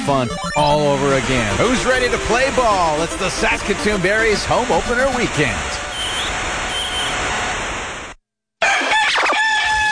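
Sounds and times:
speech: 0.1s - 5.8s
steady noise: 0.7s - 8.2s
rooster crowing: 8.6s - 9.8s.

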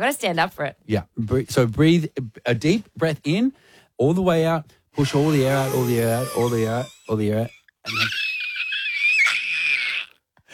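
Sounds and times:
speech: 0.0s - 8.4s
person screaming as hard as they can: 5.0s - 7.0s, 7.9s - 10.2s.

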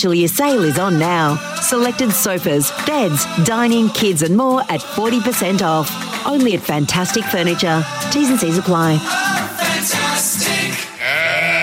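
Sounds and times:
speech: 0.0s - 9.5s
sheep bleating: 10.8s - 11.6s.

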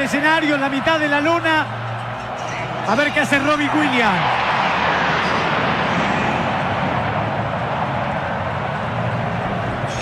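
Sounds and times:
speech: 0.1s - 1.8s, 2.9s - 4.7s
military jets flying low over a stadium: 2.2s - 9.9s.

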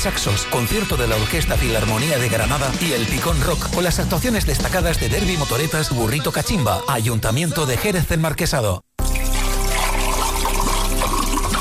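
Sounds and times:
speech: 0.0s - 8.9s
water pouring and trickling: 9.0s - 11.5s.

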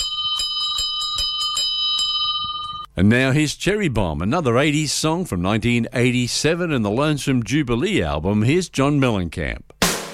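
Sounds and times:
small bell ringing: 0.0s - 2.9s
speech: 3.0s - 9.8s.

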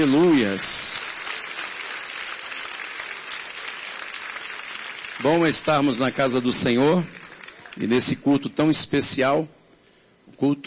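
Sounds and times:
speech: 0.0s - 1.1s, 5.2s - 9.6s, 10.4s - 10.6s
audience clapping hands: 0.0s - 8.4s.

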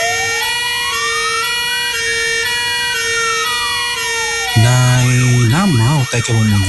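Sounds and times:
fire engine siren wailing: 0.0s - 6.6s
speech: 4.6s - 6.6s.

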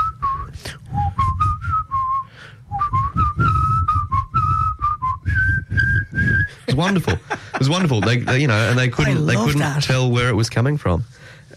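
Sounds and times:
person whistling a folk-song melody: 0.0s - 6.6s
low rumble of noise: 0.0s - 11.5s
laughter: 6.5s - 10.1s
speech: 6.8s - 11.5s.

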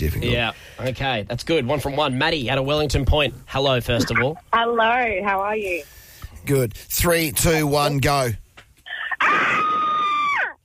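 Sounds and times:
speech: 0.0s - 8.4s
person crying out: 8.9s - 10.6s
person screaming loudly: 9.0s - 10.6s.

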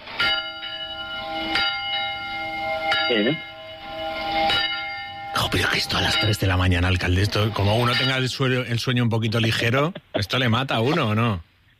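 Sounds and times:
church bells ringing: 0.0s - 8.8s
speech: 3.1s - 3.5s, 5.5s - 11.5s.

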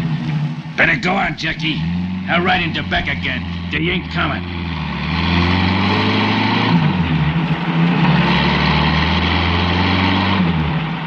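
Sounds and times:
broad road noise: 0.0s - 11.0s
heavy truck engine droning on a main highway: 0.0s - 11.0s
speech: 0.8s - 5.4s.

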